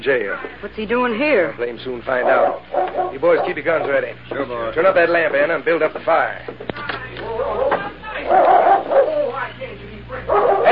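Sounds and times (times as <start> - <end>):
speech: 0.0 - 7.7, 8.3 - 9.6
dog barking and whimpering in agitated bursts: 2.2 - 4.0, 7.4 - 9.4, 10.3 - 10.7.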